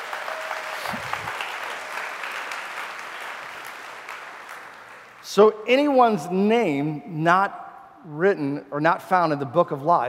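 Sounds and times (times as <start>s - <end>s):
audience hand clapping: 0.0s - 5.2s
speech: 5.3s - 10.0s.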